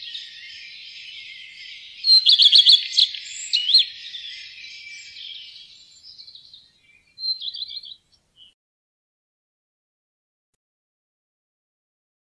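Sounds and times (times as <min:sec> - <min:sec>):
common redstart song of rapid high notes: 0:00.0 - 0:08.6
faint high twittering: 0:00.0 - 0:08.6.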